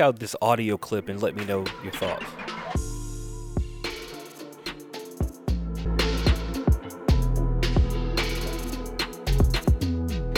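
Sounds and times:
speech: 0.0s - 2.9s
deep sustained bass notes: 5.5s - 10.3s.

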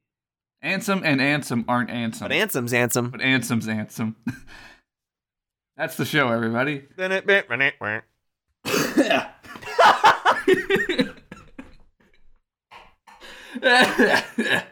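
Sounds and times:
speech: 0.6s - 4.8s, 5.8s - 11.1s, 13.5s - 14.7s
person coughing harshly with throaty laugh-like sounds: 8.7s - 9.4s, 13.6s - 14.7s
laughter: 9.1s - 11.5s.

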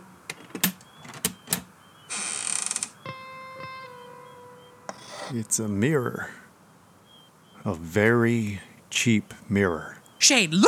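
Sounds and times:
sharp wooden clicks: 0.3s - 1.8s
heavy treasure chest lid rattling, grinding and creaking open: 0.3s - 3.0s
speech: 5.3s - 6.4s, 7.6s - 10.6s.

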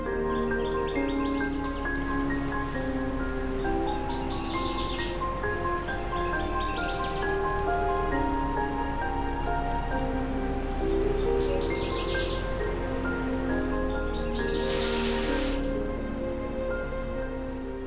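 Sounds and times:
northern waterthrush singing: 0.0s - 2.3s, 3.2s - 9.9s, 10.9s - 15.7s
steady noisy background: 0.0s - 17.8s.

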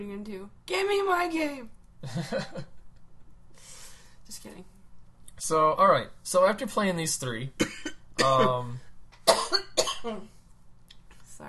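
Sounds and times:
speech: 0.0s - 2.8s, 4.3s - 4.8s, 5.4s - 10.4s
laughter: 2.0s - 2.7s, 8.2s - 8.7s
harsh phlegmy coughs: 7.6s - 8.7s, 9.3s - 10.2s.

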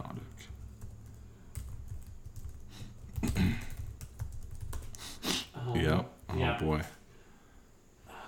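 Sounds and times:
typing on a computer keyboard: 0.1s - 5.0s
speech: 6.6s - 6.9s.

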